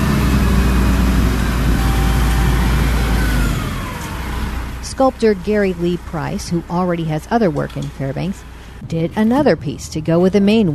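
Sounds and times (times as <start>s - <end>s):
lift truck engine rumbling while hoisting a heavy bronze statue: 0.0s - 10.7s
speech: 5.0s - 10.7s.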